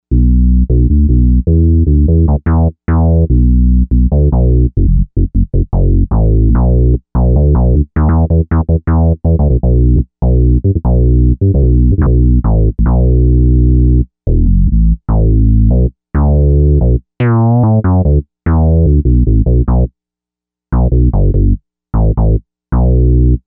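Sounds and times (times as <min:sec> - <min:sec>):
Filta Bass on a Novation UltraNova synthesizer: 0:00.1 - 0:19.9, 0:20.8 - 0:23.4.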